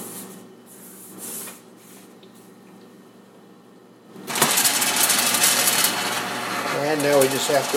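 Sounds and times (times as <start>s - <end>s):
electric popcorn popper motor driving its stirring arm: 4.2s - 7.7s
speech: 7.0s - 7.7s.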